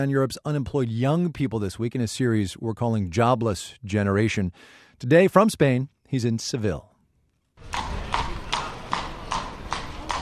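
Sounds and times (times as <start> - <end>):
speech: 0.0 - 6.9
horse and carriage hoofbeats: 7.6 - 10.2
street background: 7.6 - 10.2.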